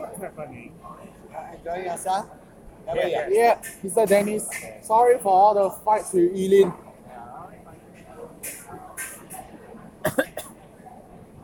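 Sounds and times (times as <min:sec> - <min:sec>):
faint murmur: 0:00.0 - 0:11.4
speech: 0:00.2 - 0:06.8
harsh coughs: 0:10.0 - 0:10.6.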